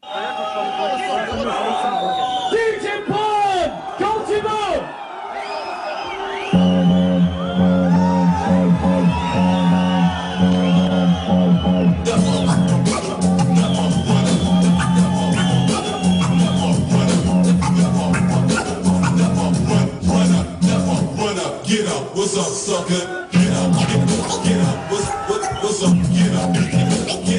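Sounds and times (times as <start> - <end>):
crowd whistling and cheering at a DJ championship set in France: 0.0 - 20.8, 22.7 - 27.3
heavy bass-driven music: 6.6 - 21.4, 23.4 - 27.3
DJ's turntable scratching: 12.0 - 21.3, 23.4 - 27.3.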